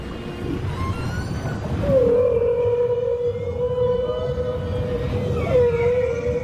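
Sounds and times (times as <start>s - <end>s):
humpback whale moaning at a coral reef: 0.4s - 6.4s.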